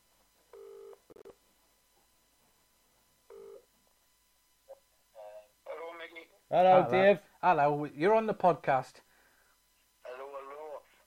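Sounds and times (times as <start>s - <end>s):
outgoing telephone call ringback tone: 0.6s - 1.4s, 3.3s - 3.6s
speech: 6.5s - 9.1s.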